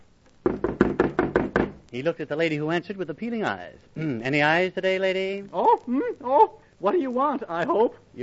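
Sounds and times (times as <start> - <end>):
loud pounding knocks on a door: 0.4 - 1.8
speech: 1.9 - 8.2.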